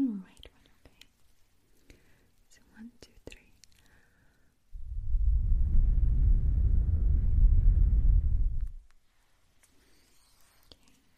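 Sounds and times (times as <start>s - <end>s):
wind blowing: 4.7s - 8.9s.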